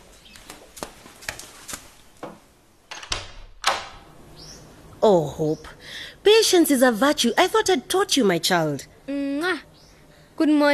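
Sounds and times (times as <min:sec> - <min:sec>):
bathroom door handle and latch clicking and knocking: 0:02.9 - 0:04.0
speech: 0:05.0 - 0:09.7, 0:10.4 - 0:10.7.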